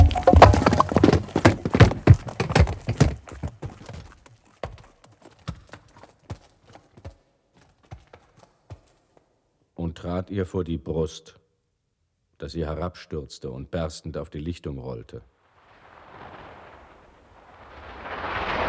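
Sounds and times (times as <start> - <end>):
hooves of a ridden donkey clip-clopping: 0.0 - 9.3
speech: 10.3 - 11.4, 12.4 - 15.3.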